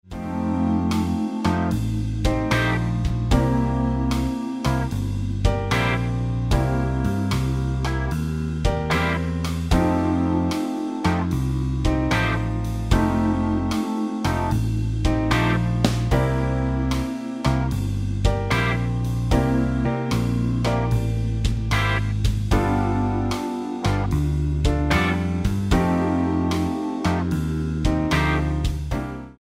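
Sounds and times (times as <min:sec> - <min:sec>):
jazzy twelve-bar blues backing track in C: 0:00.1 - 0:29.3.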